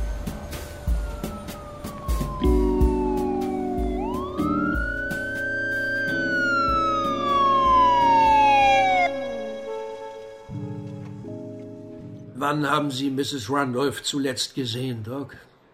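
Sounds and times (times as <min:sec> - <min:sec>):
police patrol car siren wailing: 0:00.0 - 0:10.5
speech: 0:12.5 - 0:15.5.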